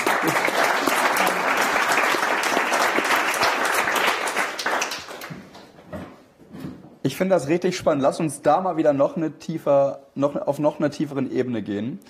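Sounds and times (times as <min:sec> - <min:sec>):
applause from a group: 0:00.0 - 0:05.7
speech: 0:07.1 - 0:12.0.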